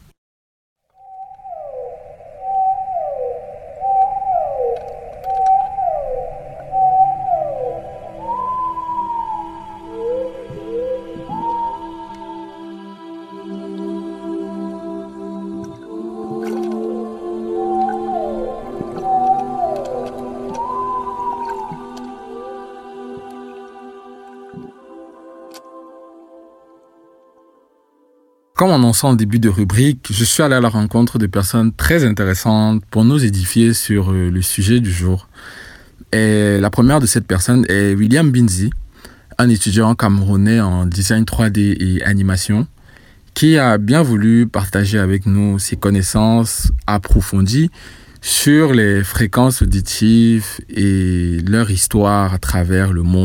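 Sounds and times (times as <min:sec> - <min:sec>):
underwater whale calls with descending moans and upsweeping cries: 0:01.0 - 0:28.2
speech: 0:28.7 - 0:38.8, 0:39.4 - 0:42.7, 0:43.4 - 0:53.2.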